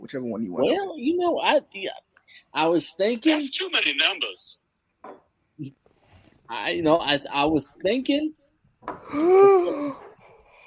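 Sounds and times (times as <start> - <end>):
speech: 0.1 - 5.8, 6.5 - 10.0
loud drawn-out yawn: 9.0 - 10.0.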